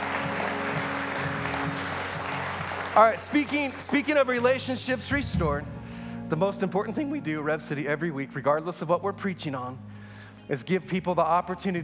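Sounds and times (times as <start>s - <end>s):
congregation applauding: 0.0s - 4.8s
speech: 3.0s - 9.9s, 10.5s - 11.8s.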